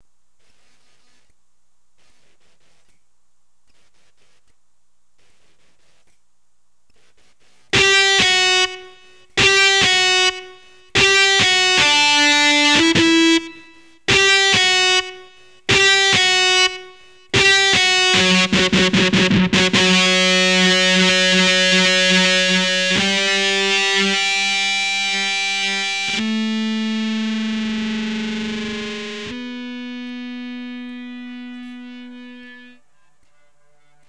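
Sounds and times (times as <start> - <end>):
guitar line: 7.7 - 32.8.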